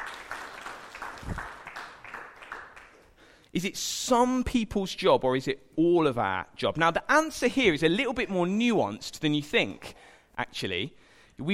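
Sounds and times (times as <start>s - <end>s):
audience applause: 0.0s - 3.2s
speech: 3.6s - 11.5s.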